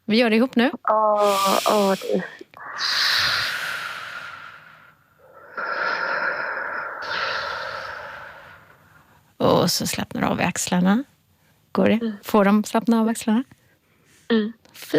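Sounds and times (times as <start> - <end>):
speech: 0.1 - 3.1, 9.7 - 11.1, 11.8 - 13.6, 14.3 - 14.9
slow hissing exhalations during a breathing exercise: 1.2 - 9.3.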